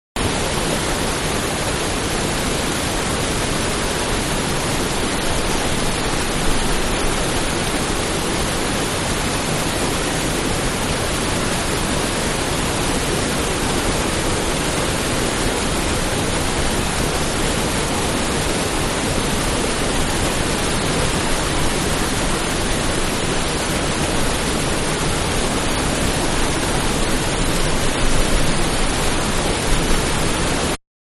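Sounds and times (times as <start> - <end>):
small waterfall: 0.2 - 30.8.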